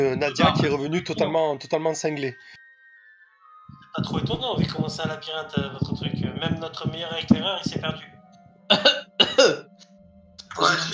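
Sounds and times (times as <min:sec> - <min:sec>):
speech: 0:00.0 - 0:02.6, 0:03.9 - 0:08.1, 0:08.7 - 0:09.7, 0:10.6 - 0:10.9
person coughing loudly: 0:08.7 - 0:09.7.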